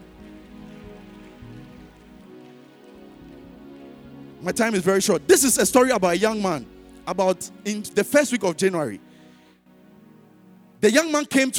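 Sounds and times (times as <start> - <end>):
audience clapping hands: 0.0 - 4.1
low sustained musical tone: 0.0 - 10.8
speech: 4.4 - 9.1, 10.8 - 11.5.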